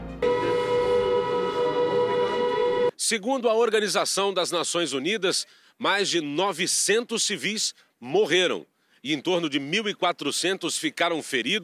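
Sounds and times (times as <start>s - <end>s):
air raid siren wailing with layered harmonics: 0.0s - 3.0s
speech: 3.1s - 11.6s.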